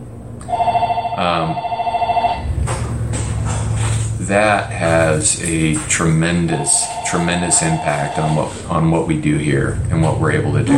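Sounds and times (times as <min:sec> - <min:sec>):
telephone ringing with a trilling electronic tone: 0:00.5 - 0:02.6, 0:06.2 - 0:08.6
speech: 0:01.2 - 0:01.7, 0:04.3 - 0:10.7
noise: 0:02.5 - 0:10.7.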